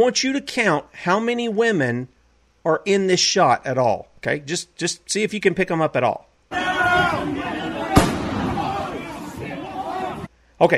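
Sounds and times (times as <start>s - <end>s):
speech: 0.0s - 6.3s, 10.6s - 10.7s
crowd noise: 6.5s - 10.3s
indistinct voices: 6.5s - 10.3s
single sharp gunshot in played video footage: 7.9s - 8.8s.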